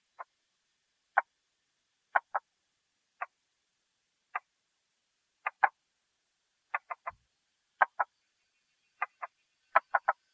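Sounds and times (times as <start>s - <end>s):
Buergeria tree frog calling: 0.0s - 0.3s, 1.1s - 1.3s, 2.1s - 2.5s, 3.2s - 3.4s, 4.3s - 4.5s, 5.4s - 5.8s, 6.7s - 7.2s, 7.8s - 10.3s.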